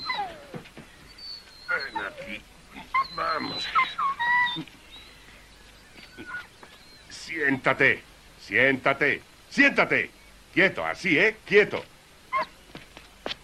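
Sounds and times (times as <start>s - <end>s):
dog whining: 0.0s - 5.1s, 6.0s - 7.0s, 12.3s - 12.6s
speech: 2.2s - 4.8s, 7.3s - 12.5s.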